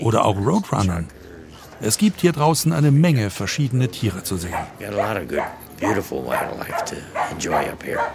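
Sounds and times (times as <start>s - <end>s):
speech: 0.0s - 1.2s, 1.8s - 8.1s
dog barking and yipping with whiny tones: 4.4s - 8.1s.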